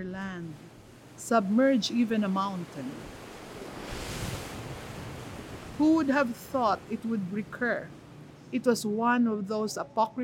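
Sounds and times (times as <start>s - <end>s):
speech: 0.0s - 3.2s, 5.8s - 10.2s
sea waves surging and washing: 0.0s - 8.5s
gusty wind-like rush: 3.0s - 6.0s.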